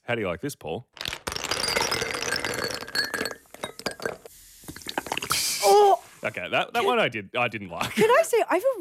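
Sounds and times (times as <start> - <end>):
speech: 0.1 - 1.0, 6.2 - 8.7
ice clinking in a glass: 1.0 - 5.4
fizzy drink poured over ice in a glass: 1.2 - 6.3
fizzy drink bubbles popping and ticking: 4.8 - 5.5.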